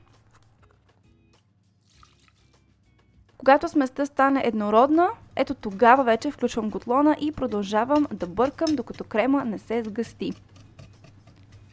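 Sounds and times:
fresh milk poured into a pot of eggs, sugar and flour: 1.8s - 2.5s
speech: 3.4s - 10.5s.

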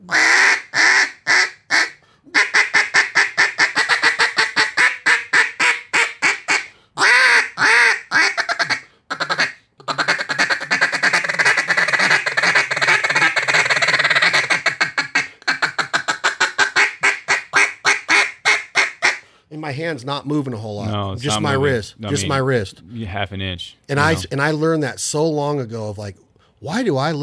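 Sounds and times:
hand-blown duck call quacks: 0.0s - 19.2s
speech: 19.8s - 27.2s.

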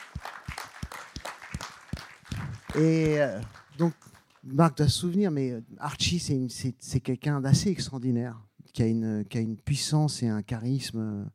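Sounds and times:
audience applause: 0.0s - 4.6s
speech: 2.8s - 11.3s.

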